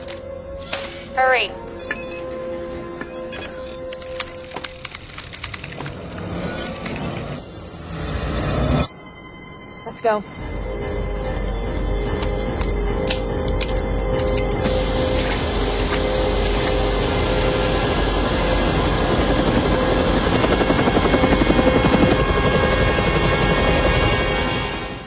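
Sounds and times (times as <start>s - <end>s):
speech: 1.2s - 1.7s, 10.0s - 10.5s
B-212 helicopter flying on a rooftop: 5.2s - 8.9s, 11.4s - 25.0s.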